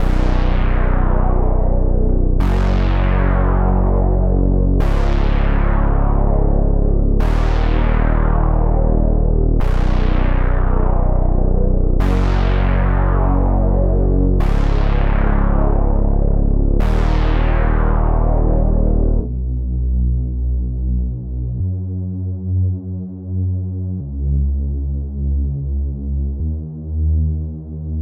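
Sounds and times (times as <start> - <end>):
pop bass melody: 0.0 - 28.0.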